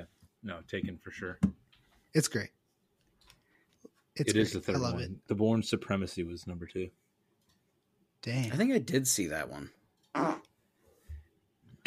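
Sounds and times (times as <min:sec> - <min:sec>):
speech: 0:00.4 - 0:02.6, 0:04.2 - 0:07.0, 0:08.2 - 0:10.5
short loud buzzy fart: 0:10.2 - 0:10.5.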